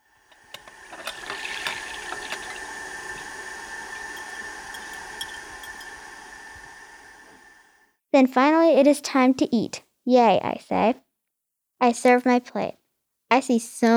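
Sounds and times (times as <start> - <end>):
water running from a tap: 0.0 - 7.7
metal cookware clinking and clattering: 0.3 - 6.6
speech: 8.1 - 11.0, 11.8 - 13.9.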